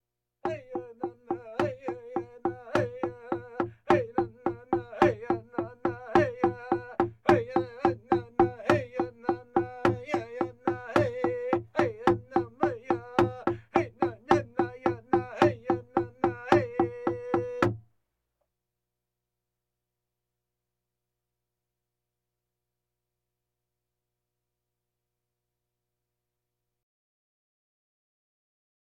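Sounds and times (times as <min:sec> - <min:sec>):
bongos: 0:00.5 - 0:17.8.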